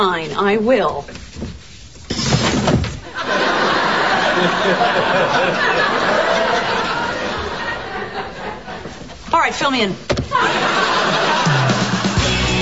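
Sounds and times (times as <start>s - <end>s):
speech: 0.0s - 1.2s, 4.4s - 6.8s, 9.5s - 10.8s
office chair back support being adjusted, clunking and rattling: 0.9s - 3.1s, 10.0s - 10.4s
audience laughter: 3.1s - 9.2s, 10.3s - 12.5s.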